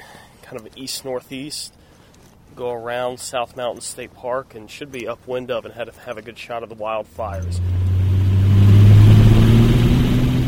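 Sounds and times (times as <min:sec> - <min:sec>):
speech: 0:00.5 - 0:01.8, 0:02.5 - 0:07.8
single-engine Cessna airplane engine drone during takeoff: 0:07.3 - 0:10.4.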